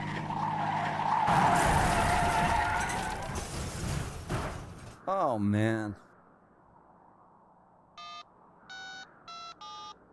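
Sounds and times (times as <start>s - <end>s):
car skidding on snow into a ditch during a blizzard: 0.0s - 4.0s
speech: 5.3s - 6.1s.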